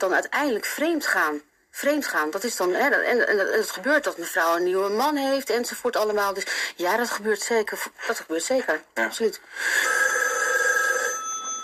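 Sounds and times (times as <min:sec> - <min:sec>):
speech: 0:00.0 - 0:10.1
telephone ringing with a bright electronic tone: 0:09.6 - 0:11.6.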